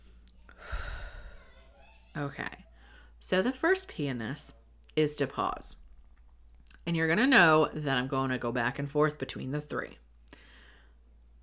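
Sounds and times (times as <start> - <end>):
deep breath in through the nose during a guided relaxation exercise: 0.5 - 1.5, 10.4 - 11.0
speech: 2.2 - 5.8, 6.8 - 10.0.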